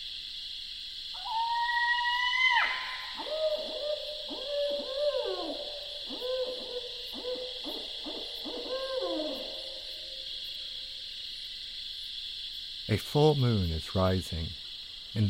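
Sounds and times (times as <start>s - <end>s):
steady buzz of night insects: 0.0s - 15.2s
barred owl scream call at night: 1.1s - 10.2s
speech: 12.9s - 15.2s.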